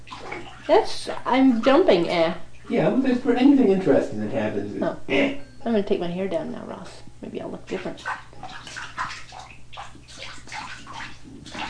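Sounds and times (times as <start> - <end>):
water splashing and sloshing in a bathtub: 0.0 - 3.9, 7.6 - 11.6
speech: 0.7 - 8.6.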